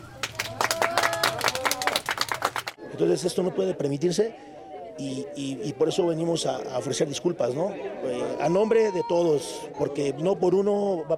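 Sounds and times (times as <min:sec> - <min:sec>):
small group of people clapping: 0:00.0 - 0:02.8
speech: 0:03.0 - 0:11.1.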